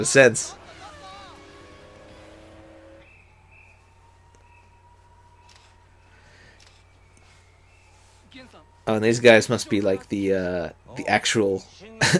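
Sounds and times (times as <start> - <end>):
speech: 0.0 - 0.6, 8.9 - 12.1
self-driving car engine revving: 0.0 - 3.3.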